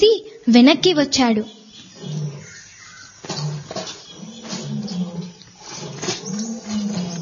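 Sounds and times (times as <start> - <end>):
speech: 0.5 - 1.6
lion roaring in pain: 1.8 - 7.2.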